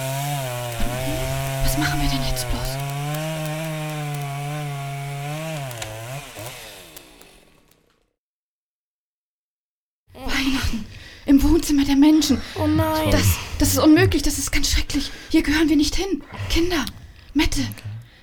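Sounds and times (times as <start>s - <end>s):
chainsaw cutting through a fir tree: 0.0s - 8.0s
speech: 1.8s - 2.8s, 11.7s - 18.0s.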